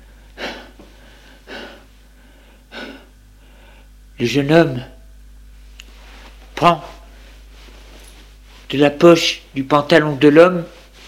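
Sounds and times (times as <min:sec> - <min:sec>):
person panting heavily, out of breath: 0:00.2 - 0:03.9
speech: 0:04.2 - 0:04.9, 0:06.6 - 0:07.0, 0:08.7 - 0:10.8.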